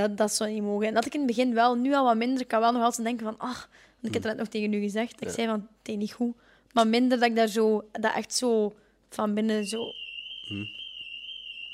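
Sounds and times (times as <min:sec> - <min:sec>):
speech: 0:00.0 - 0:10.8
car alarm going off outside: 0:09.6 - 0:11.7.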